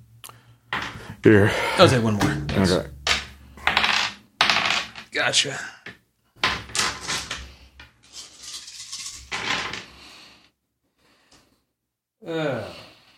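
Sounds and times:
speech: 1.2s - 3.0s, 5.2s - 5.7s, 12.3s - 12.6s
dice clattering across a hard surface: 3.1s - 5.1s, 6.4s - 9.8s.

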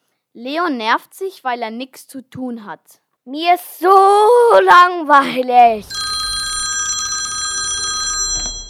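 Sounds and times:
speech: 0.4s - 6.2s
telephone bell ringing with a bright metallic trill: 5.8s - 8.6s
clunk of phone being picked up: 7.7s - 8.6s.

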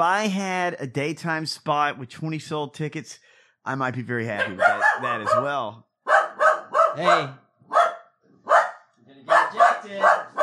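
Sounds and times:
speech: 0.0s - 5.9s, 7.0s - 7.8s
dog barking in a studio: 4.4s - 10.4s.

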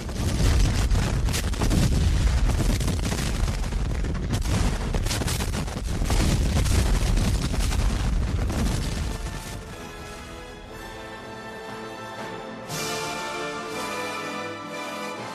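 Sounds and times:
barrage of cannon and artillery fire between two armies: 0.0s - 9.8s
music: 8.9s - 15.3s.

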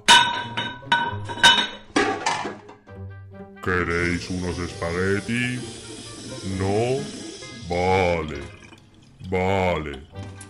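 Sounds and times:
metal cooking pots clanking and clattering: 0.0s - 2.9s
speech: 3.6s - 5.8s, 6.4s - 8.6s, 9.2s - 10.2s.

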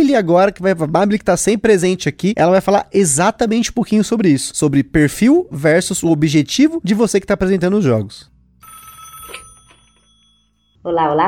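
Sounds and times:
speech: 0.1s - 8.3s, 10.8s - 11.2s
telephone bell ringing for a listener calling in to a radio show: 8.6s - 10.8s.

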